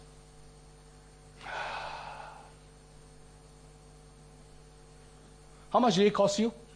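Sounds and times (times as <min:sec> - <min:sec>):
deep breath drawn in by a standing person: 0:01.4 - 0:02.6
speech: 0:05.7 - 0:06.6.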